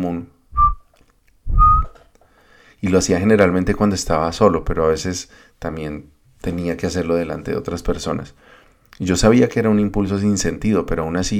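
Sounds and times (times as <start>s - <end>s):
speech: 0.0s - 0.4s, 2.8s - 11.3s
soft breathy whistle on a single note: 0.6s - 0.9s, 1.5s - 2.0s.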